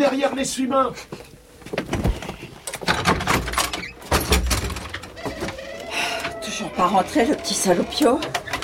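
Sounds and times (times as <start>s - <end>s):
speech: 0.0s - 1.8s, 6.7s - 8.4s
sticking door being pushed open: 2.8s - 5.4s.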